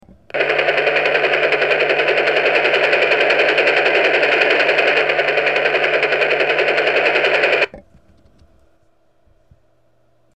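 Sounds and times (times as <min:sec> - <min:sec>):
helicopter: 0:00.3 - 0:07.7.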